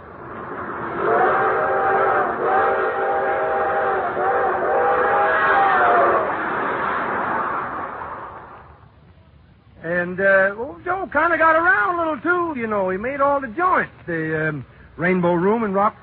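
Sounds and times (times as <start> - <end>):
rumble of a moving train speeding through the countryside: 0.0 - 16.0
long steam train whistle in the countryside: 0.9 - 6.9
speech: 11.1 - 16.0.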